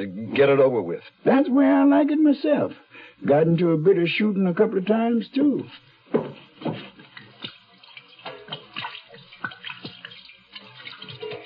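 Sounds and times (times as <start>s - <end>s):
speech: 0.0s - 6.8s
gin pouring and splashing over a person's hands as they wash them: 6.3s - 11.4s.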